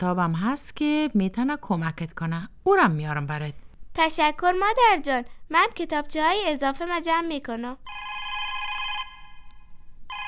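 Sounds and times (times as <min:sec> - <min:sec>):
speech: 0:00.0 - 0:08.1
telephone ringing with bright electronic tone: 0:07.9 - 0:10.2.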